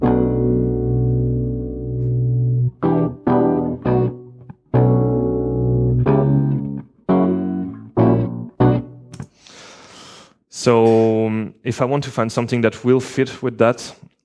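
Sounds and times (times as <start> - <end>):
buzzy synth chords in a live electronic music loop: 0.0 - 9.1
speech: 10.6 - 11.0, 11.6 - 14.1.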